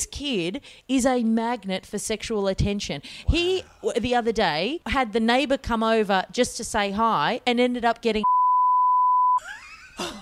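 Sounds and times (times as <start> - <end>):
speech: 0.0 - 8.4, 9.4 - 10.2
flat steady censor bleep: 8.2 - 9.4.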